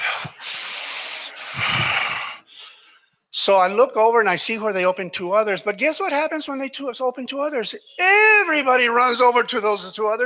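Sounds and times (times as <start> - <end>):
heavy frustrated breathing of person waiting in store checkout line: 0.0 - 3.2
speech: 3.4 - 10.2.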